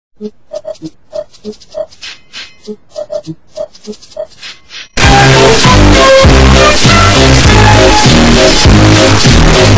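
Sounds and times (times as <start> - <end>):
boosted bass: 5.0 - 9.7.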